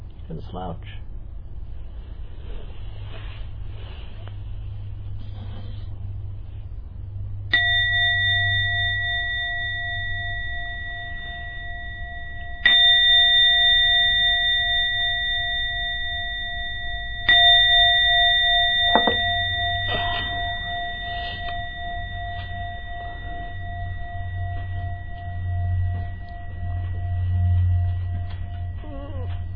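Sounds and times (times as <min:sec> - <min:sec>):
low hum: 0:00.0 - 0:29.5
speech: 0:00.3 - 0:01.1
bell ringing: 0:07.5 - 0:29.5.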